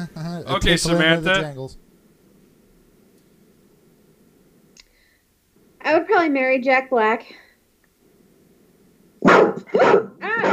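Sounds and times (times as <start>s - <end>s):
speech: 0.0s - 1.8s, 5.8s - 7.4s, 9.2s - 10.5s
dog barking: 9.2s - 10.5s.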